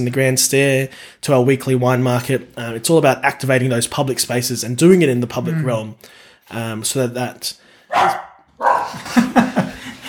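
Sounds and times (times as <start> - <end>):
speech: 0.0 - 8.2
dog barking excitedly: 7.9 - 9.0
laughter: 8.8 - 10.0.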